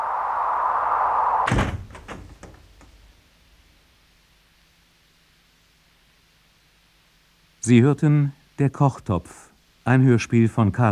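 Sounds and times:
steady broadband hiss: 0:00.0 - 0:10.2
door shut quickly with a heavy thud: 0:01.4 - 0:03.0
speech: 0:07.7 - 0:10.8.

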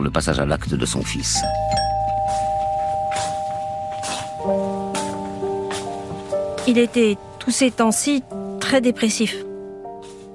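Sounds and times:
speech: 0:00.0 - 0:01.8, 0:06.7 - 0:09.5
doorbell chime rung at a front door: 0:01.3 - 0:07.6.

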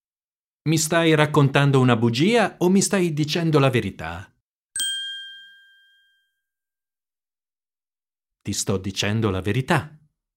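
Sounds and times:
speech: 0:00.7 - 0:04.3, 0:08.4 - 0:10.0
SMS text message notification ding: 0:04.8 - 0:06.2.

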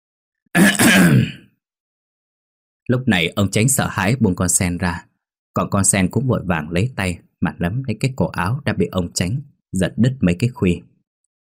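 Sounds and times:
man clearing his throat: 0:00.6 - 0:01.5
speech: 0:02.9 - 0:10.9.

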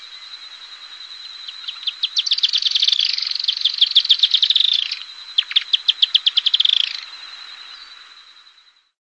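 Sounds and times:
firewood-gatherer Anumbius annumbi rapid high chattering calls: 0:01.5 - 0:07.1.

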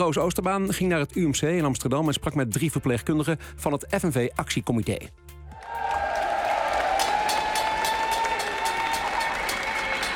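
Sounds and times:
speech: 0:00.0 - 0:06.0
crowd applauding at a nurses' protest at a hospital: 0:05.5 - 0:10.1.

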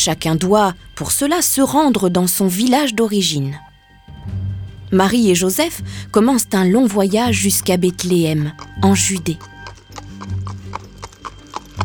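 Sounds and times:
speech: 0:00.0 - 0:03.7, 0:04.9 - 0:09.5
small donkey's hooves clip-clopping along a road: 0:07.2 - 0:11.8.

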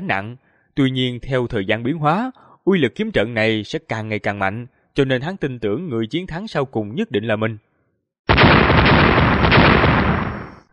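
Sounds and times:
speech: 0:00.0 - 0:07.7
continuous explosions: 0:08.3 - 0:10.7.

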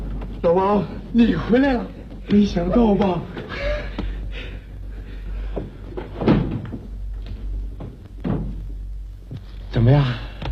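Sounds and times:
speech: 0:00.4 - 0:03.7, 0:09.8 - 0:10.3
door being opened: 0:06.0 - 0:06.9, 0:07.8 - 0:08.6.

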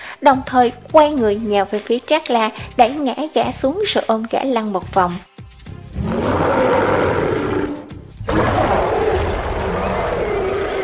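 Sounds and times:
speech: 0:00.2 - 0:05.3
male wild beast roaring in pain: 0:06.0 - 0:10.8.

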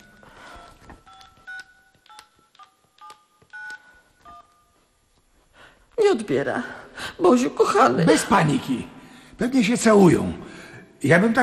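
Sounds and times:
touch-tone telephone dialing beeps: 0:00.0 - 0:04.7
speech: 0:06.1 - 0:11.4.

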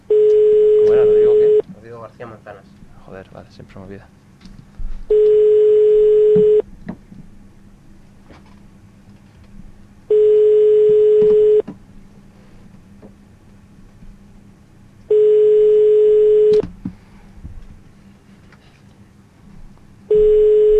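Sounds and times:
ringback tone of an unanswered outgoing telephone call: 0:00.1 - 0:01.6, 0:05.1 - 0:06.6, 0:10.1 - 0:11.6, 0:15.1 - 0:16.6, 0:20.1 - 0:20.7
speech: 0:02.2 - 0:04.2.

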